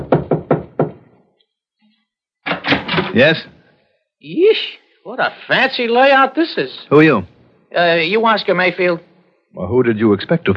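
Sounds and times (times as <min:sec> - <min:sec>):
knocking on a door: 0:00.0 - 0:01.1
speech: 0:03.2 - 0:03.6, 0:04.2 - 0:10.5.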